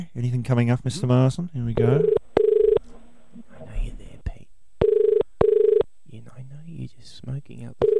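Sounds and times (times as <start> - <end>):
speech: 0.0 - 2.2, 7.3 - 7.9
telephone ringing on the line: 1.8 - 2.9, 4.8 - 5.9, 7.8 - 7.9.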